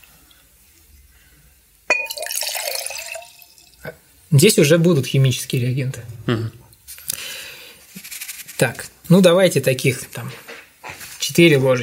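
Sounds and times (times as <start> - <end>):
sharp glass clink: 1.9 - 3.8
water splashing and bubbling poured from a glass: 1.9 - 3.8
speech: 4.3 - 6.6, 8.6 - 10.5, 11.4 - 11.8.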